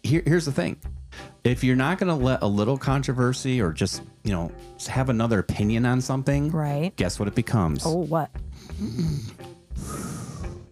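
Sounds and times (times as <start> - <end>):
speech: 0.1 - 10.0
person imitating loud snoring: 8.6 - 10.7.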